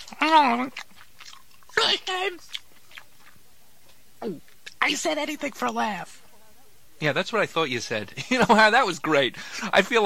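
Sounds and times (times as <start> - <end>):
person chewing an apple: 0.0 - 3.4
speech: 0.2 - 0.9, 1.8 - 2.6, 4.2 - 6.2, 7.0 - 10.0.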